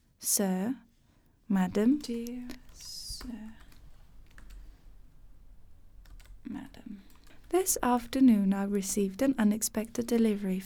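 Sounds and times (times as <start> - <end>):
speech: 0.2 - 0.9, 1.5 - 3.6, 6.5 - 10.6
typing an email on a computer keyboard: 1.7 - 10.6.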